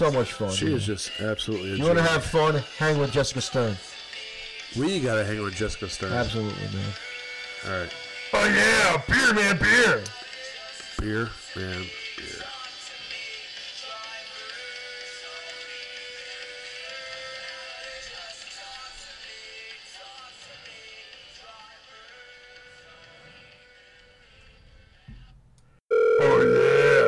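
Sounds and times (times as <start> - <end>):
speech: 0.0 - 3.9, 4.7 - 7.0, 7.6 - 10.2, 11.0 - 12.4
telephone ringing tone on an outgoing phone call: 25.9 - 27.0.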